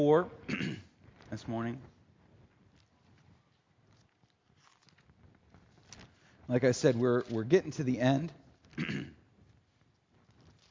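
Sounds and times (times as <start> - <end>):
speech: 0.0 - 1.9, 6.5 - 9.2
short rough cough or throat clear: 0.5 - 0.9, 8.8 - 9.2.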